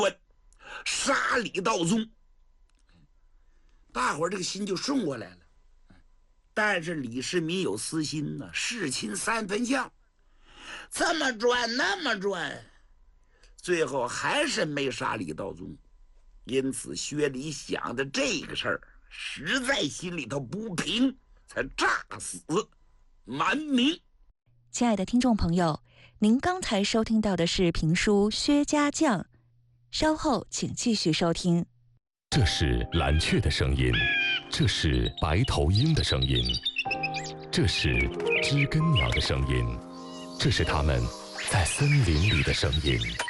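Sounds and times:
speech: 0:00.0 - 0:00.2, 0:00.8 - 0:02.2, 0:03.9 - 0:05.4, 0:06.6 - 0:10.0, 0:10.6 - 0:12.7, 0:13.6 - 0:15.8, 0:16.5 - 0:24.1, 0:24.7 - 0:29.3, 0:29.9 - 0:31.7, 0:32.3 - 0:43.2
distinct bird calls in short separate bursts: 0:32.9 - 0:43.2.

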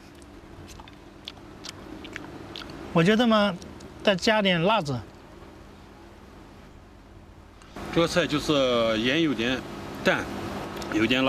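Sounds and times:
person chewing stir-fried bottle gourd with pork: 0:00.0 - 0:02.8
low steady hum: 0:00.0 - 0:11.2
speech: 0:03.0 - 0:05.1, 0:08.0 - 0:11.2.

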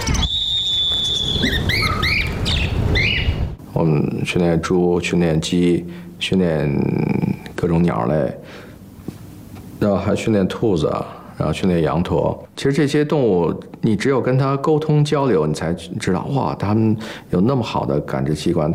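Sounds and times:
birds chirping during group flight training at a pet training school: 0:00.0 - 0:03.6
people talking: 0:03.7 - 0:08.4, 0:09.8 - 0:18.7.

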